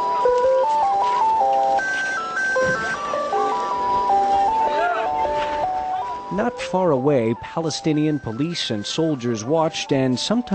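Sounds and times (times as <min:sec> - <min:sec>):
ice cream truck tinny electronic jingle: 0:00.0 - 0:10.5
street noise: 0:00.0 - 0:10.5
faint crowd murmur: 0:02.0 - 0:07.0
speech: 0:06.4 - 0:10.5.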